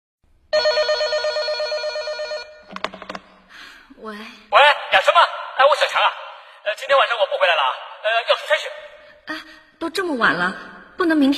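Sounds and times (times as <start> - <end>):
telephone ringing at night: 0.5 - 3.3
sharp clicks and clatter: 2.7 - 3.3
speech: 4.0 - 4.5, 5.1 - 11.3.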